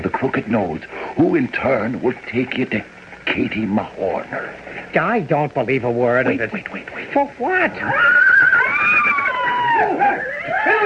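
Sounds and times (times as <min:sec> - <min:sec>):
speech: 0:00.0 - 0:09.0
agitated horses neighing and whinnying: 0:07.9 - 0:10.8.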